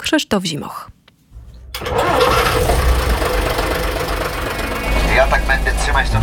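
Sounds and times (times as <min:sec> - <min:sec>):
speech: 0:00.1 - 0:01.0, 0:05.2 - 0:06.2
large diesel engine of a vintage Jelcz 043 bus starting in Łódź: 0:01.5 - 0:06.2.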